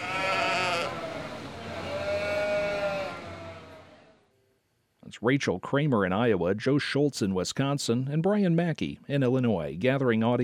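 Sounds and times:
sheep bleating: 0:00.0 - 0:04.1
speech: 0:05.1 - 0:10.4.

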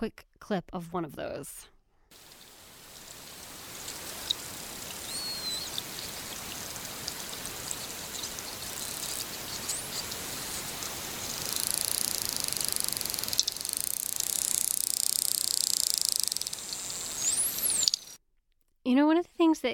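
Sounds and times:
speech: 0:00.0 - 0:02.3, 0:18.9 - 0:19.7
constant crackling underwater hiss: 0:02.1 - 0:18.2
dolphin signature whistle: 0:05.0 - 0:05.8, 0:17.1 - 0:18.1.

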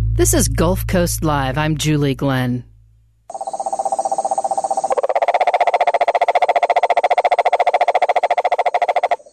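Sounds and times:
speech: 0:00.2 - 0:02.7
toxic cane toad calling with a pulsed trill: 0:03.3 - 0:09.3.

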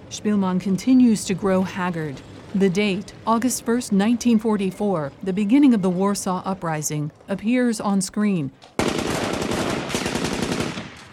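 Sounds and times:
speech: 0:00.1 - 0:08.9
automatic gunfire in the streets: 0:08.8 - 0:11.1.

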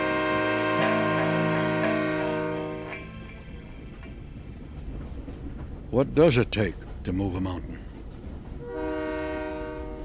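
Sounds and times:
long chord-like train horn blast: 0:00.0 - 0:03.4, 0:08.6 - 0:10.0
heavy low rumble of a passing train: 0:00.0 - 0:10.0
speech: 0:05.9 - 0:07.9.

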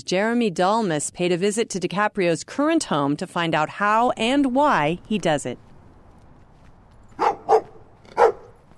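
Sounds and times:
speech: 0:00.0 - 0:05.7
guard dogs barking at a house in West Oakland: 0:07.1 - 0:08.6.

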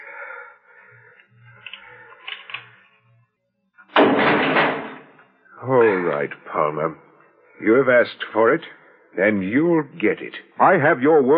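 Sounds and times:
heavy jail door slamming shut: 0:03.9 - 0:05.1
speech: 0:05.6 - 0:11.3.

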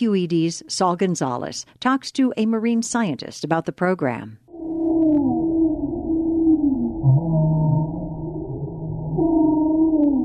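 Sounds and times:
speech: 0:00.0 - 0:04.4
humpback whale calling in the Santa Barbara Channel off the California coast: 0:04.5 - 0:10.2
low rumbling undertone: 0:04.5 - 0:10.2.

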